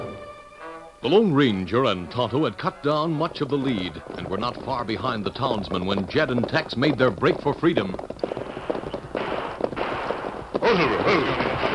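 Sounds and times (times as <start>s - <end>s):
speech: 1.0s - 8.1s
gunshots over a ridge near an Indian reservation in the Rainbow Hills: 7.3s - 11.7s.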